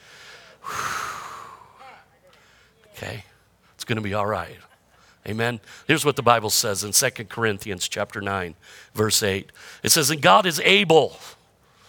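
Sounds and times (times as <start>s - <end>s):
deep breath during a church sermon: 0.0s - 2.8s, 8.6s - 8.9s, 9.6s - 9.8s, 11.6s - 11.8s
speech: 3.9s - 11.4s.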